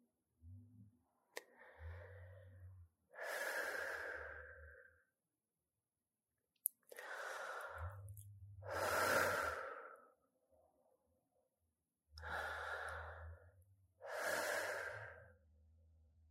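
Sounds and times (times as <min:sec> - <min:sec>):
slow deep breaths in and out: 0:01.4 - 0:05.2, 0:06.8 - 0:10.7, 0:12.2 - 0:15.4.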